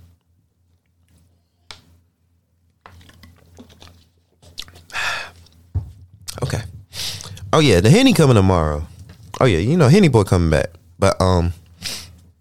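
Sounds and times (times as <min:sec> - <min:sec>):
person gulping and swallowing water: 0:04.6 - 0:07.5
person sharply exhaling or gasping: 0:04.9 - 0:05.4, 0:06.9 - 0:07.4
speech: 0:07.6 - 0:11.6.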